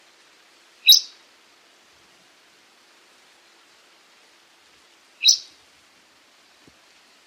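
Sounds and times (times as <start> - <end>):
sharp high bird calls in Papua New Guinea: 0.8 - 1.2, 5.2 - 5.6.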